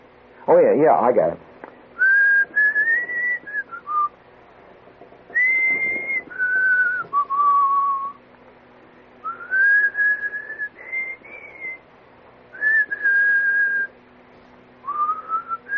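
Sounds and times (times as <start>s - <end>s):
speech: 0.5s - 1.5s
person whistling a melody in clear sustained phrases: 2.0s - 4.1s, 5.4s - 8.2s, 9.2s - 11.8s, 12.6s - 13.9s, 14.9s - 15.7s.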